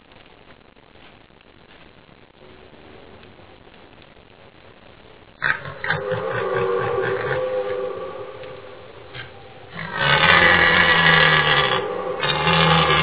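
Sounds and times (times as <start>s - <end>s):
red deer stag roaring during the rut: 5.4s - 13.0s.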